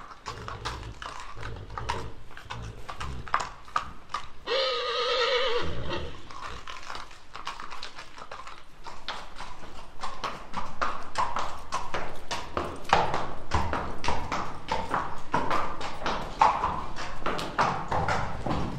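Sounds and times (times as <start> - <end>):
horse whinnying in a long wavering tonal neigh: 0.0 - 3.5, 4.4 - 6.8
irregular clip-clop horse hoofbeats: 0.0 - 18.7.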